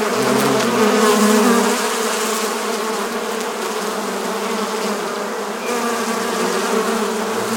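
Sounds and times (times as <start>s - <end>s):
honey bee buzzing: 0.0s - 7.5s.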